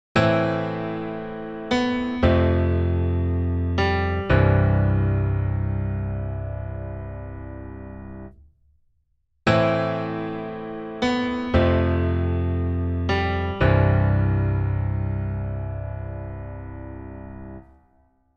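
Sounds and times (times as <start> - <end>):
piano with subtle hall ambience: 0.2 - 8.4, 9.5 - 18.1.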